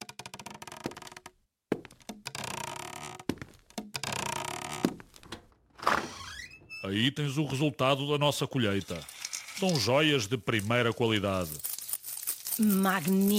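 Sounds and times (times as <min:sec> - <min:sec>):
heavy footsteps on a creaking wooden staircase: 0:00.0 - 0:06.7
speech: 0:06.9 - 0:11.7, 0:12.6 - 0:13.3.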